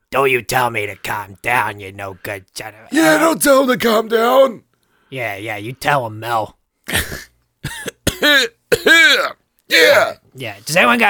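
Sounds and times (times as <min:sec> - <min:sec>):
speech: 0:00.1 - 0:07.2, 0:08.2 - 0:11.0
harsh raspy coughs: 0:06.9 - 0:10.2.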